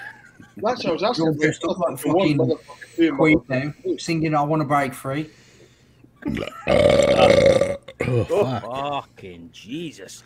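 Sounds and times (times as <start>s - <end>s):
speech: 0.6s - 5.4s, 6.2s - 10.2s
short throaty croak: 6.2s - 8.4s
loud rumbling burp: 6.2s - 8.6s.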